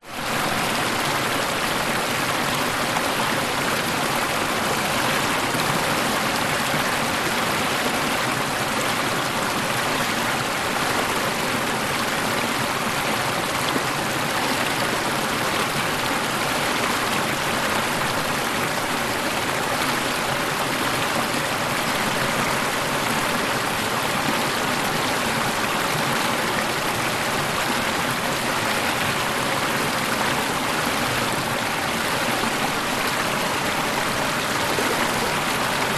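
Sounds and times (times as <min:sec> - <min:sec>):
small waterfall flowing over a shelf into a pool: 0:00.0 - 0:35.9.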